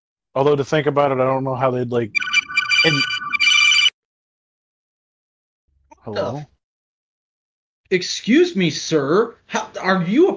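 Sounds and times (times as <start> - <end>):
speech: 0.4 - 3.2, 6.0 - 6.5, 7.9 - 10.3
phone ringtone with bright steady electronic tone: 2.2 - 4.0.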